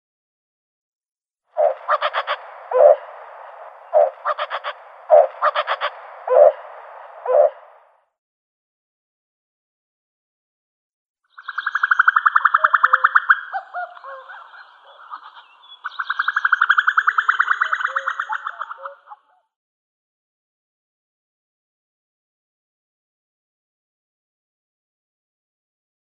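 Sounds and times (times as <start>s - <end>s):
male common cuckoo calling: 1.6s - 7.8s, 11.4s - 19.3s.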